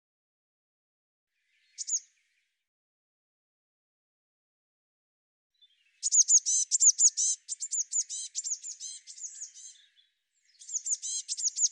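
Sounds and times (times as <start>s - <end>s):
Eurasian blue tit calls: 6.0s - 9.8s, 10.6s - 11.7s.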